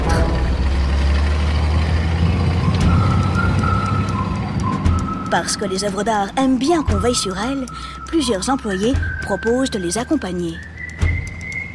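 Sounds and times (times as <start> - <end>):
convoy of heavy trucks carrying packed artworks rumbling: 0.0 - 11.7
thin high squeal of truck braking: 0.0 - 11.7
speech: 5.3 - 10.7.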